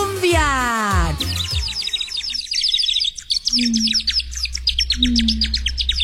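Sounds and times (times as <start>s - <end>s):
blackbirds chirping and twittering: 0.1s - 6.0s
low steady hum: 3.2s - 6.0s
brief tonal hoots: 3.4s - 6.0s.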